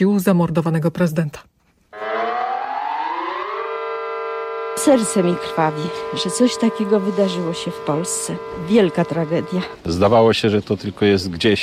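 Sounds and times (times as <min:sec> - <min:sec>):
speech: 0:00.0 - 0:01.5, 0:04.8 - 0:11.6
civil defense alarm siren wailing in Lublin: 0:02.0 - 0:09.8.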